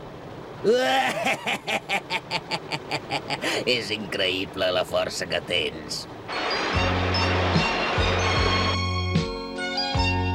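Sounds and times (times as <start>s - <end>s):
water rushing along a riverbed: 0.0s - 8.7s
speech: 0.6s - 6.9s
music with repeated low notes and sustained higher tones: 6.4s - 10.3s.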